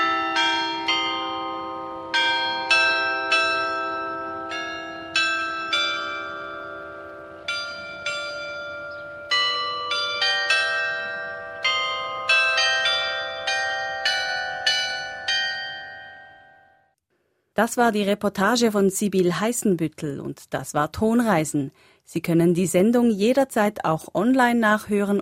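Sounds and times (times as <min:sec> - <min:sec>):
mechanical glockenspiel in Switzerland playing a slow tune: 0:00.0 - 0:16.9
speech: 0:17.6 - 0:25.2.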